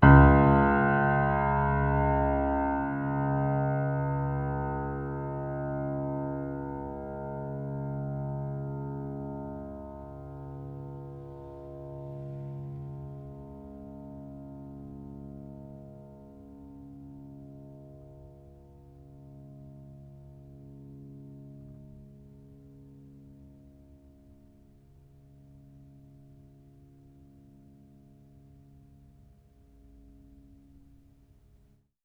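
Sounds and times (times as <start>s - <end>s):
piano note: 0.0s - 23.6s.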